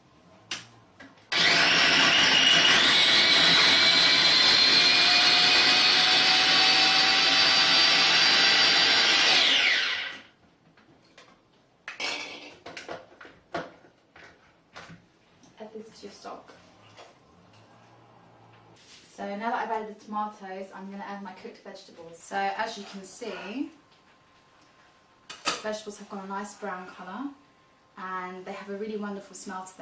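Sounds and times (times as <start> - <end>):
blender pureeing vegetables for soup stock: 1.3 - 10.3
speech: 20.2 - 23.8, 25.6 - 27.4, 28.0 - 29.8.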